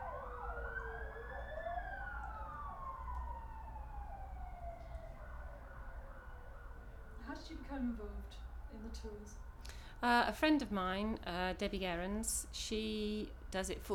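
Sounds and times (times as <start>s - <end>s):
emergency vehicle sirens wailing: 0.0s - 9.5s
low traffic rumble: 0.0s - 13.9s
speech: 7.4s - 13.9s.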